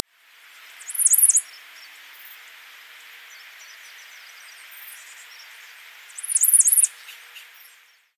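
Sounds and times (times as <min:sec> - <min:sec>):
steady background hiss: 0:00.0 - 0:08.1
common yellowthroat (Geothlypis trichas) giving high wavering chattered bursts: 0:00.8 - 0:01.4, 0:06.2 - 0:07.3.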